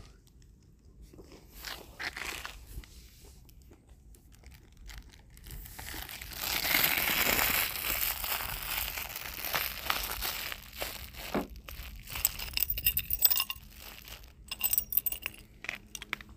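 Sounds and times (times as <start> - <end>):
crinkling rustling handling noise: 0.0 - 16.3
room key jingling: 12.1 - 16.2.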